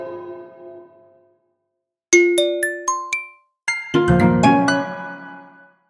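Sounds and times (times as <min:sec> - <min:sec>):
musical organic UI sound effects for a building game: 0:02.2 - 0:04.6.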